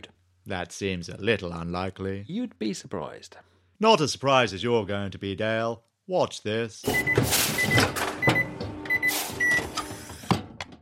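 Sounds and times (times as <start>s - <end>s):
speech: 0.5s - 8.0s
short electronic beeps: 6.9s - 9.7s
mechanical transformation effect whirring and clattering: 7.0s - 10.8s.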